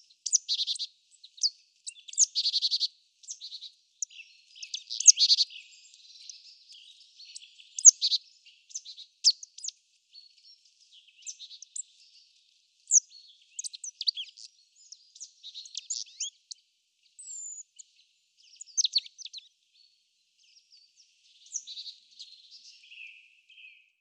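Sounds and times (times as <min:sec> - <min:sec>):
marsh tit Poecile palustris calls: 0:00.2 - 0:12.1, 0:12.9 - 0:16.6, 0:18.5 - 0:19.5.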